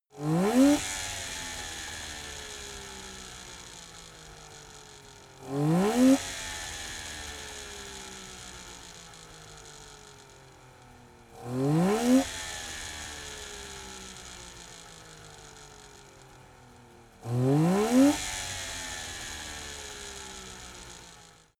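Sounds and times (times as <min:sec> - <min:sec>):
Saab 92 car engine revving slowly: 0:00.2 - 0:21.5.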